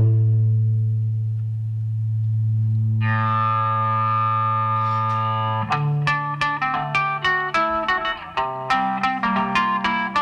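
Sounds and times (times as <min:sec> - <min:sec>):
sustained distorted drone in a song intro: 0:00.0 - 0:06.0
rhythmic run of sharp repeated plucked notes: 0:00.0 - 0:10.1.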